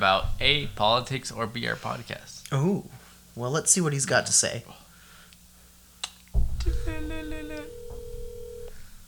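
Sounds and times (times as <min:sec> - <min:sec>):
speech: 0:00.0 - 0:04.8
phone call ringing over a speakerphone: 0:06.8 - 0:08.9.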